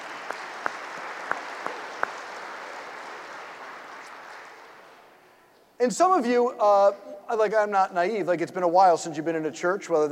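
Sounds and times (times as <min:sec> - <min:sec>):
sharp individual claps: 0:00.0 - 0:05.0
audience applause in a church: 0:00.0 - 0:05.1
speech: 0:05.8 - 0:10.1.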